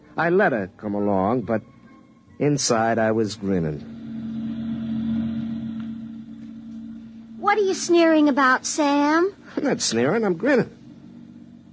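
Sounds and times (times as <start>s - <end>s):
speech: 0.2s - 1.8s, 2.4s - 4.0s, 7.5s - 10.8s
truck engine running: 3.4s - 11.7s.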